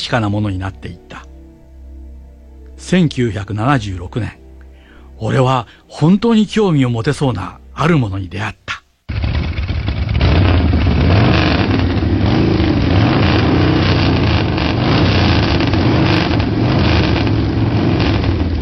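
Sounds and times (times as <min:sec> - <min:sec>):
speech: 0:00.1 - 0:01.2, 0:02.8 - 0:04.4, 0:05.2 - 0:08.6
motorcycle engine running: 0:09.1 - 0:18.6.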